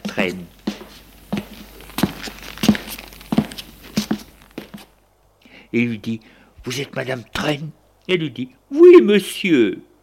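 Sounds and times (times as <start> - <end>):
footsteps of a gendarmerie officer going down stairs: 0.0 - 5.0
speech: 0.2 - 0.6, 5.7 - 9.9.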